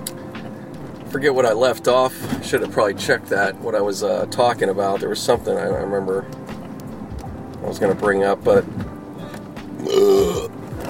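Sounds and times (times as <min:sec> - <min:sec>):
speech: 0:01.1 - 0:06.4, 0:07.6 - 0:08.8
deep throaty burp: 0:09.8 - 0:10.6.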